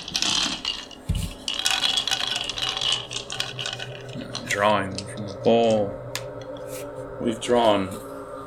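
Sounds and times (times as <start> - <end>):
four dice bones rattling and clattering across a hard surface: 0.0 - 5.4
speech: 4.6 - 6.0, 7.2 - 8.1.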